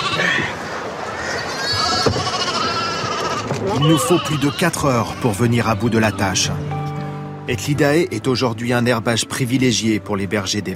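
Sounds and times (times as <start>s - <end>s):
flock of sheep bleating while being loaded by a winch at a cliff top: 0.0s - 0.6s, 1.2s - 6.4s
busy noisy outdoor background: 0.0s - 10.7s
speech: 3.8s - 6.8s, 7.5s - 10.7s.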